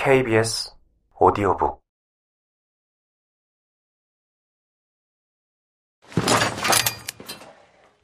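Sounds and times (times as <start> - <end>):
speech: 0.1 - 1.8
heavy metallic clank of a shackle snapping shut: 6.1 - 7.6.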